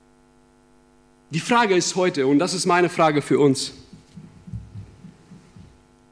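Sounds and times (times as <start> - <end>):
quiet hum: 0.0 - 6.1
speech: 1.3 - 3.9
faint human heartbeat: 3.8 - 6.1.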